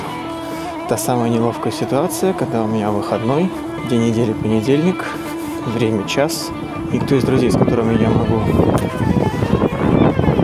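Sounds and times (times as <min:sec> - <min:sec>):
speech: 0:00.9 - 0:09.1
strong wind buffeting the microphone: 0:03.6 - 0:10.4.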